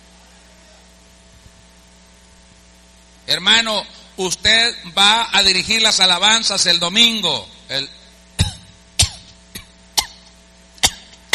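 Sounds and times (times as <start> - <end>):
speech: 3.3 - 8.0
sharp coughs: 8.4 - 11.3.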